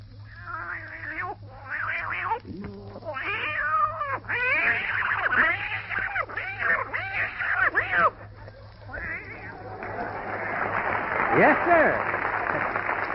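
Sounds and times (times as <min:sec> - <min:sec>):
human voice imitating two cats fighting: 0:00.3 - 0:09.6
laughter: 0:07.7 - 0:13.1
speech: 0:11.4 - 0:12.1.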